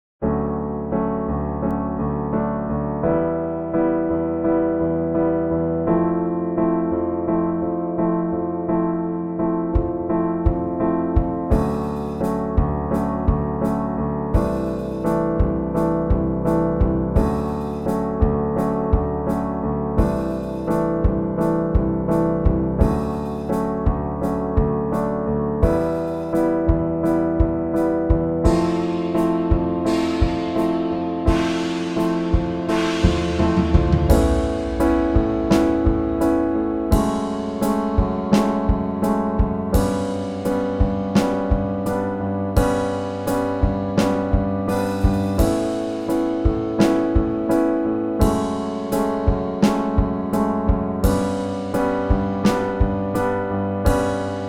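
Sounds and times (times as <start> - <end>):
piano: 0.0 - 54.4
rough drums: 14.4 - 19.1, 20.0 - 24.0, 25.6 - 42.0, 42.6 - 47.5, 48.2 - 53.2.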